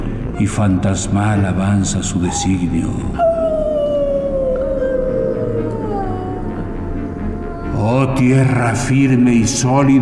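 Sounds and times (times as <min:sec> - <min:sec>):
low rumbling background: 0:00.0 - 0:10.0
speech: 0:00.4 - 0:03.3, 0:07.8 - 0:10.0
wolf howling: 0:02.2 - 0:09.3.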